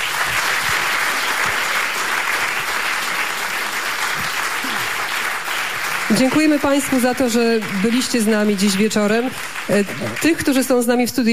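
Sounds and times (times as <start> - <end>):
studio audience applause at an evening radio concert event: 0.0 - 11.0
speech: 6.1 - 11.3.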